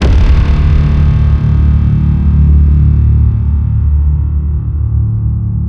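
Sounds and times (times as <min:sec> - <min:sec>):
designed sci-fi cinematic hit: 0:00.0 - 0:05.5.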